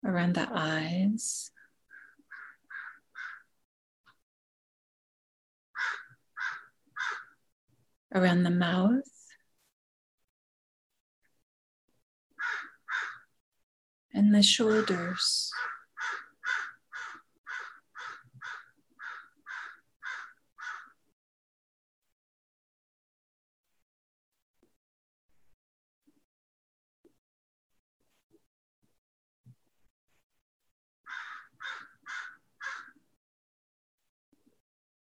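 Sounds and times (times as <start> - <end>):
speech: 0.1 - 1.5, 8.1 - 9.1, 14.2 - 15.8
bird calling harshly outside a window: 1.9 - 3.5, 5.8 - 7.4, 12.4 - 13.3, 15.5 - 20.9, 31.1 - 33.0.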